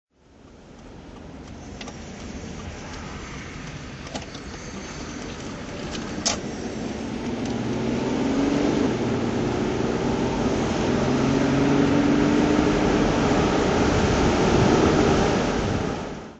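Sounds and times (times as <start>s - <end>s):
Jaguar XJC V12 engine driving: 0.2s - 16.3s.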